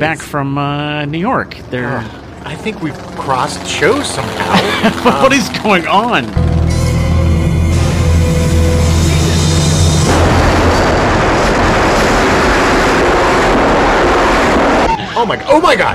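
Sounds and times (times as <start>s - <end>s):
speech: 0.0s - 6.7s, 15.2s - 15.9s
prop plane engine droning: 1.5s - 15.9s
laughter: 4.2s - 5.6s, 14.8s - 15.6s
mid-air collision of a prop plane and a 707: 6.6s - 15.0s.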